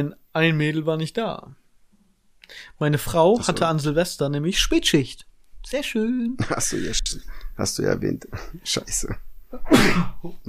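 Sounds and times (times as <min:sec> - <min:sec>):
speech: 0:00.0 - 0:01.6, 0:02.5 - 0:10.4
laughter: 0:06.4 - 0:07.2
single sharp sneeze: 0:09.6 - 0:10.3.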